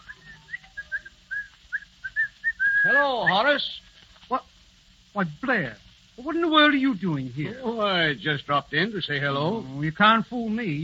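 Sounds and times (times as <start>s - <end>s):
man whistling a cheerful, bouncy tune: 0.0s - 3.4s
speech: 2.8s - 4.5s, 5.2s - 10.8s.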